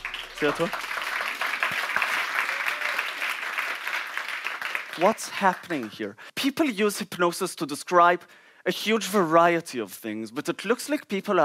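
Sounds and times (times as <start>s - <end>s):
large audience applause: 0.0s - 5.9s
speech: 0.4s - 0.9s, 5.0s - 11.4s.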